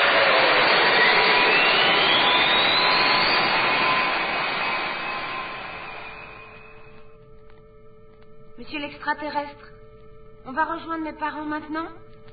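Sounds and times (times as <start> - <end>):
giant robot spacecraft taking off with a whistling jet-like roar: 0.0 - 6.9
speech: 8.8 - 9.8, 10.4 - 12.0.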